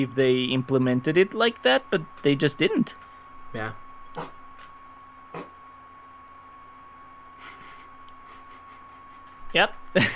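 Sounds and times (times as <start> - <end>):
speech: 0.0 - 4.4, 5.3 - 5.5, 9.5 - 10.1
steady low electrical hum: 0.0 - 10.1
cat retching under a bed: 4.2 - 4.4, 5.3 - 5.6.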